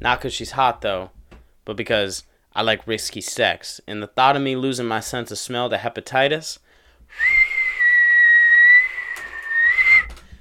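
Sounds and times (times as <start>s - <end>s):
speech: 0.0s - 7.4s
thin sustained whistle: 7.1s - 10.2s.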